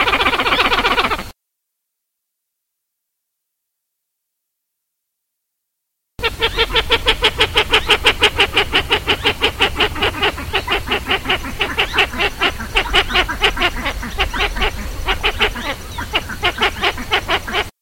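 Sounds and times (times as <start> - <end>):
pied-billed grebe calling harsh pulsed notes: 0.0 - 1.3, 6.2 - 17.7.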